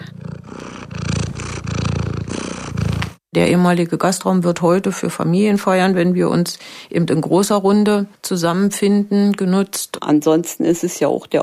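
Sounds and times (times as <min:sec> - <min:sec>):
elderly female cat purring: 0:00.0 - 0:03.2
speech: 0:03.4 - 0:11.4.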